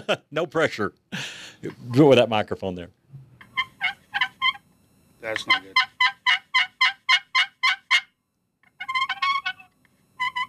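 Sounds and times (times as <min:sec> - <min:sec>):
speech: 0:00.0 - 0:03.0, 0:05.2 - 0:05.9
turkey yelps played on a slate friction call: 0:03.4 - 0:04.6, 0:05.4 - 0:10.4.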